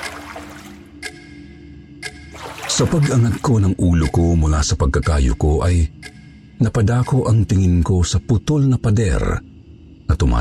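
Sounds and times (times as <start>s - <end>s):
water scooped and poured into buckets at night: 0.0s - 0.9s, 2.3s - 3.5s
speech: 2.8s - 9.5s, 10.1s - 10.3s.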